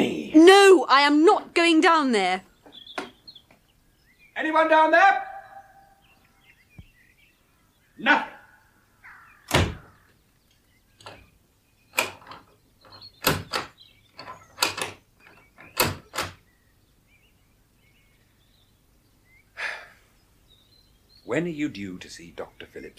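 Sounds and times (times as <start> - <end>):
speech: 0.4 - 2.5, 4.4 - 5.3, 8.0 - 8.3, 21.3 - 22.9
quiet hiss: 2.4 - 22.9
heavy cellar door banging open and shut: 9.4 - 10.0, 11.9 - 16.4.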